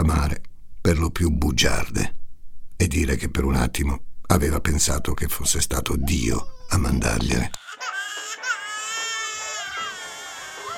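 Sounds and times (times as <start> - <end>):
speech: 0.0 - 2.2, 2.8 - 7.9
baby crying while being rocked in a living room: 5.8 - 10.7.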